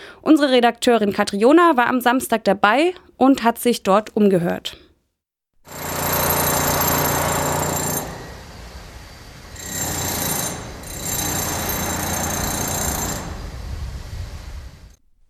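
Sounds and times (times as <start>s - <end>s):
speech: 0.2s - 4.8s
tools knocking plaster off old walls in a building being converted: 5.7s - 8.4s, 9.4s - 13.5s.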